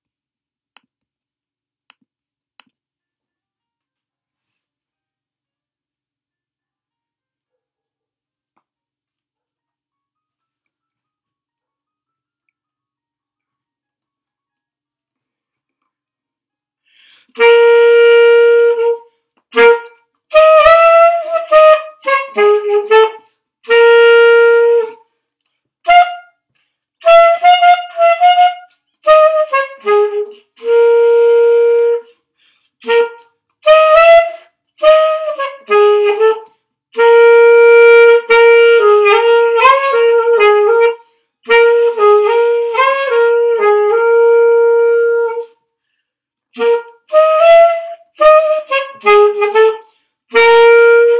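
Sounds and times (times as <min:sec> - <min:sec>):
blues alto saxophone: 0:17.0 - 0:25.1, 0:25.8 - 0:45.6, 0:46.5 - 0:51.1.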